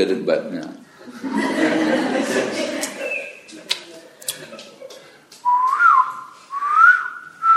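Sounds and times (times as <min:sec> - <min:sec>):
speech: 0:00.0 - 0:01.8
laughter: 0:01.0 - 0:05.2
person whistling an imitation of a koel call: 0:05.5 - 0:07.5.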